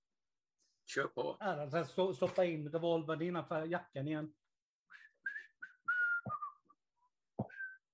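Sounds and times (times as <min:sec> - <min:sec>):
speech: 0:00.9 - 0:05.1
person whistling a short casual tune: 0:04.9 - 0:06.8, 0:07.4 - 0:07.9.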